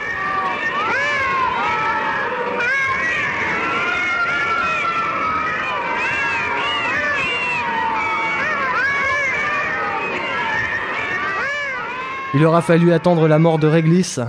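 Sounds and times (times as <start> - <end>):
over a thousand caged cats meowing and yowling in a hangar: 0.0 - 14.0
speech: 12.4 - 14.2.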